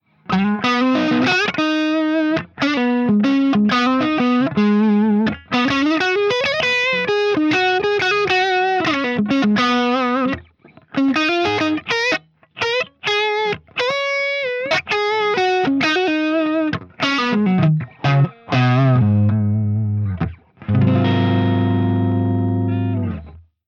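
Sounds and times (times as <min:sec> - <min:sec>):
electric guitar on neck pickup: 0:00.0 - 0:23.5.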